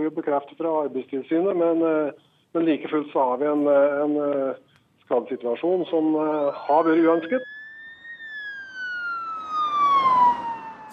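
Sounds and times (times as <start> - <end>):
speech: 0.0 - 7.6
faint road rumble: 3.4 - 10.9
ambulance siren: 5.6 - 10.9.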